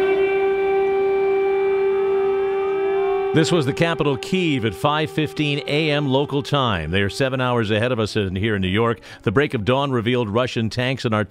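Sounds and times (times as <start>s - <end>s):
air raid warning sirens wailing: 0.0s - 8.8s
speech: 3.3s - 11.2s.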